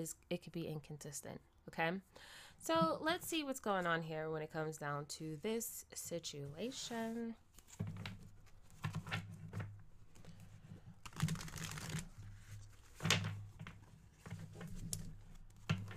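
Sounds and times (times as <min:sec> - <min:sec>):
speech: 0:00.0 - 0:08.2
shuffling a deck of oracle cards: 0:07.6 - 0:15.9.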